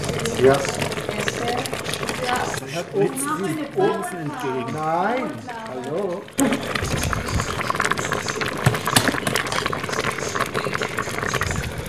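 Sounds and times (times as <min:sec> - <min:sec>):
lentils bubbling in a cooking pot: 0:00.0 - 0:11.8
speech: 0:00.4 - 0:00.9, 0:02.3 - 0:07.0.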